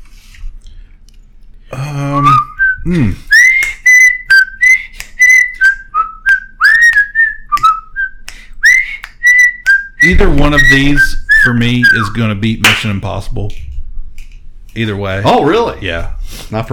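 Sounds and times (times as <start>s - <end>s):
person whistling a TV theme tune: 1.8s - 12.2s
speech: 2.8s - 3.3s, 10.1s - 13.7s, 14.8s - 16.7s
low thump: 10.1s - 11.4s.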